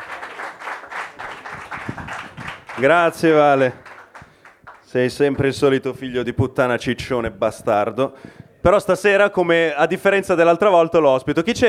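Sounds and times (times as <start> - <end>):
audience applause at a comedy night: 0.0 - 4.9
speech: 2.8 - 3.8, 4.9 - 11.6.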